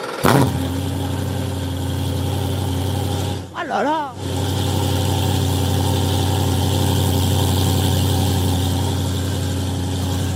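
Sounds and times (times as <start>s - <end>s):
race car engine starting and idling: 0.0s - 10.3s
person exclaiming: 3.6s - 4.2s
speech: 3.7s - 4.4s.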